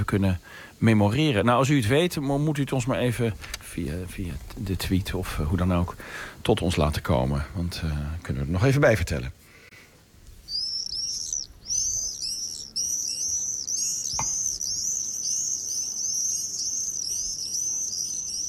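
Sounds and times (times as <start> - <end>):
speech: 0.0 - 9.4
common swifts screaming overhead in July: 10.5 - 18.4.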